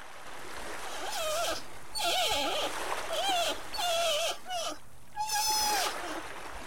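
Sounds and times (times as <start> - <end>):
sea otter calls in water: 0.9 - 6.2.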